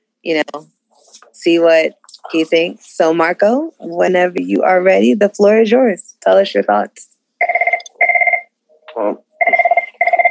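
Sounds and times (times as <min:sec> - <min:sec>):
speech: 0:00.2 - 0:07.1, 0:09.0 - 0:09.2
telephone ringing in trilling bursts: 0:07.4 - 0:08.5, 0:09.3 - 0:10.3.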